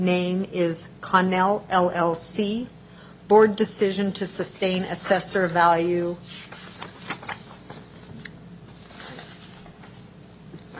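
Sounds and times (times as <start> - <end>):
speech: 0.0 - 6.6
sheets of paper shuffling at a property assessment board hearing: 4.9 - 10.1.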